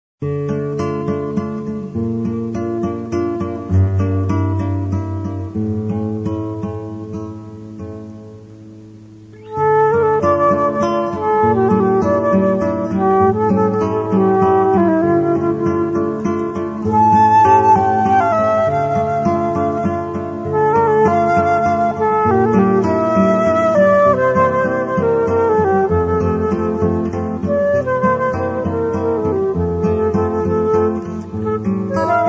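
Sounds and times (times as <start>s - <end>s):
guitar: 0.2s - 32.2s
flute: 9.3s - 32.2s.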